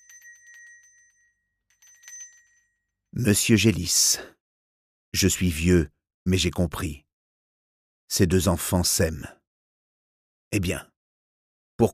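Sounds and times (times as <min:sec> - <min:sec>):
electric doorbell ringing with trilling metallic strikes: 0:00.0 - 0:03.0
speech: 0:03.2 - 0:04.4, 0:05.2 - 0:07.0, 0:08.1 - 0:09.4, 0:10.5 - 0:10.9.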